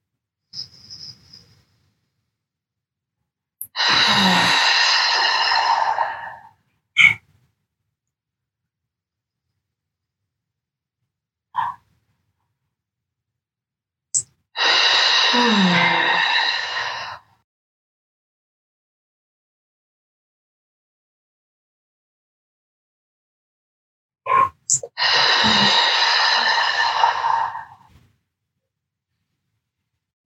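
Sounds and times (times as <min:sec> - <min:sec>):
audible out-breaths through the mouth during a deep-breathing exercise: 0:03.7 - 0:06.6, 0:14.6 - 0:17.3, 0:24.9 - 0:27.9.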